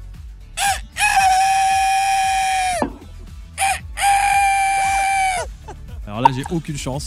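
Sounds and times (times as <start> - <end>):
person imitating a rooster crowing: 0.6 - 2.8, 3.6 - 5.6
speech: 6.4 - 7.0.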